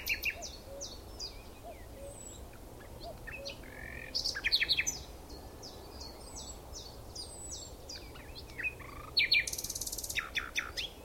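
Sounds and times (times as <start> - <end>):
common nightingale singing, Luscinia megarhynchos: 0.0 - 11.0.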